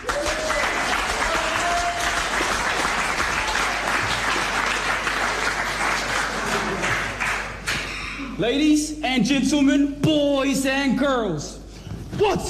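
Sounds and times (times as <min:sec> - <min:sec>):
large audience applause: 0:00.0 - 0:07.7
speech: 0:08.4 - 0:11.6, 0:12.2 - 0:12.4.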